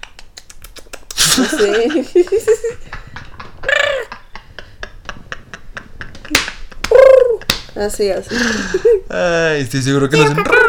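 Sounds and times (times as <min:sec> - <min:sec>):
laughter: 0:01.2 - 0:07.5
speech: 0:01.4 - 0:03.0, 0:07.8 - 0:10.6
person imitating a king penguin call with whiny squawks: 0:06.9 - 0:07.4.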